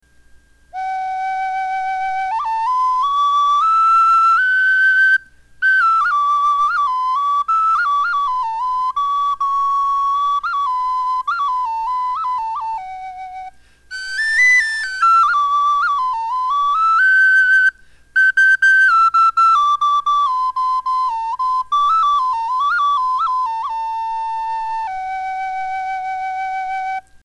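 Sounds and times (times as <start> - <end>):
flutes playing: 0.7 - 27.2.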